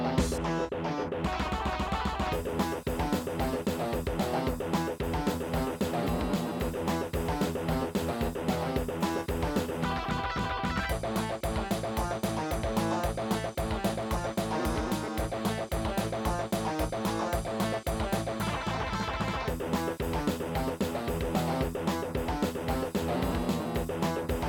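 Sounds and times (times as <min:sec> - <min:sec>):
AZTech SoundGalaxy Waverider 32 Plus soundcard test audio: 0:00.2 - 0:24.4.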